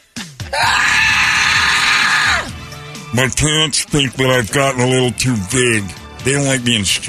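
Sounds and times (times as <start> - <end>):
person screaming: 0.5 - 2.6
speech: 3.1 - 7.0.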